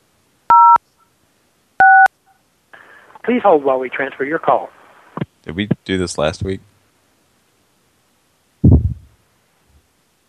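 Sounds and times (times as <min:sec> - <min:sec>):
telephone keypad tones on an automated motel phone system in Panama City Beach, Florida: 0:00.5 - 0:00.8
speech: 0:03.2 - 0:04.8, 0:05.5 - 0:06.7.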